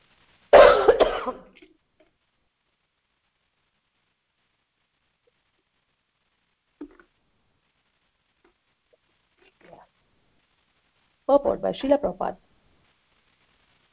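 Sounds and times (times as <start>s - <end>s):
loud rough cough: 0.6s - 1.5s
speech: 11.3s - 12.5s.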